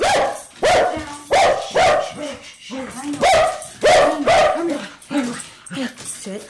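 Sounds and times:
dog barking fiercely at newcomers: 0:00.0 - 0:02.4, 0:03.2 - 0:04.9.

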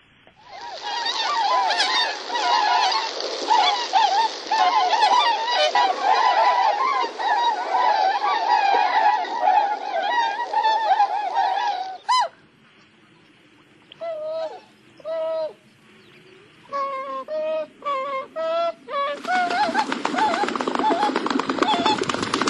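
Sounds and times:
tundra swans calling with soft moaning hoots: 0:00.4 - 0:12.5, 0:16.5 - 0:22.4.

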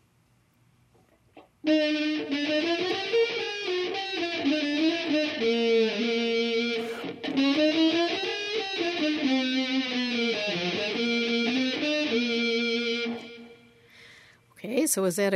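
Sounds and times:
speech: 0:01.6 - 0:02.7, 0:14.9 - 0:15.3
fuzzy electric-guitar-style distortion plug-in effect: 0:01.6 - 0:13.8.

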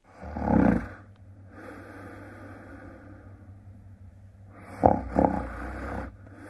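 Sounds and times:
person snoring loudly and raspily: 0:00.1 - 0:03.1, 0:04.5 - 0:06.4.

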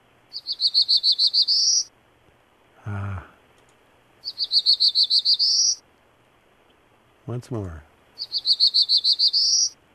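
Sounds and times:
Black-throated Green Warbler singing: 0:00.3 - 0:01.9, 0:04.2 - 0:05.8, 0:08.2 - 0:09.8
speech: 0:00.4 - 0:01.9, 0:02.8 - 0:03.4, 0:04.7 - 0:05.8, 0:07.3 - 0:09.8.

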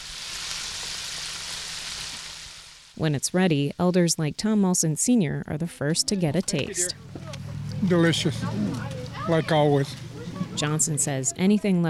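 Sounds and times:
bluegill and crappie pieces coated in flour and seasonings frying: 0:00.0 - 0:03.7
speech: 0:03.0 - 0:10.0, 0:10.6 - 0:11.8.

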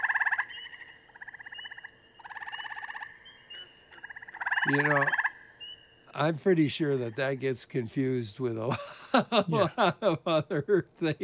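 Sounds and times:
tree frog calling in rapid pulsing trills: 0:00.0 - 0:06.2
speech: 0:04.6 - 0:05.2, 0:06.2 - 0:11.2
laughter: 0:08.6 - 0:11.2.

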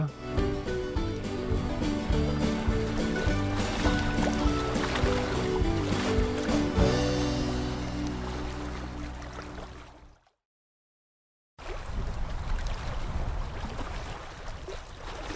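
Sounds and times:
music: 0:00.0 - 0:09.8
water splashing from canoe paddling: 0:00.2 - 0:10.4, 0:11.6 - 0:15.3.

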